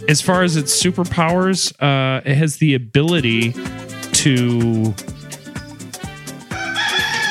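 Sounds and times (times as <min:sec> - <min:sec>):
speech: 0:00.0 - 0:05.1
rooster crowing cock-a-doodle-doo: 0:06.5 - 0:07.2.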